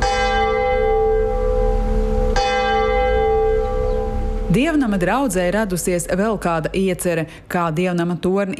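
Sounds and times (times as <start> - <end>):
church bell ringing: 0.0 - 5.2
speech: 4.5 - 8.5.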